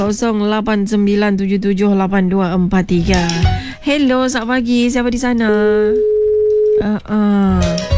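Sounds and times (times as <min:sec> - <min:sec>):
speech: 0:00.0 - 0:06.1, 0:06.8 - 0:07.8
telephone busy signal after a dropped call on a radio call-in line: 0:05.6 - 0:07.0.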